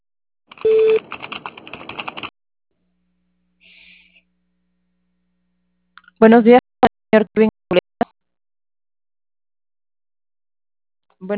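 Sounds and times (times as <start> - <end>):
answering machine tone before recording a message: 0.6 - 1.0
clicky, narrow phone-line sounds: 0.6 - 1.0
speech: 6.2 - 7.5.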